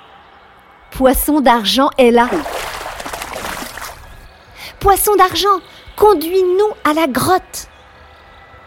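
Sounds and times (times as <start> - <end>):
speech: 1.0 - 2.5, 4.8 - 7.7
river water trickling in a forest: 2.2 - 4.4.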